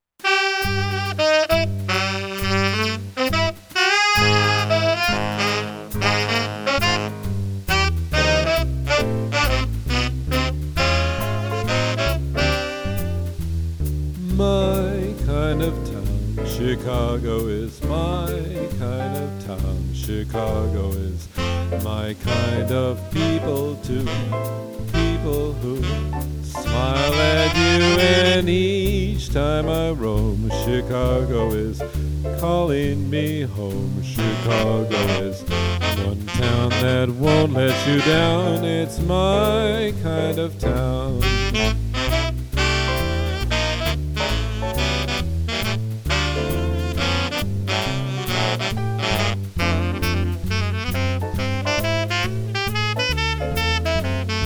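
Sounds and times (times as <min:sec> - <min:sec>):
piano: 0:00.0 - 0:54.4
saxophone: 0:00.2 - 0:13.4, 0:20.4 - 0:28.6, 0:34.2 - 0:54.4
person singing: 0:14.3 - 0:41.6.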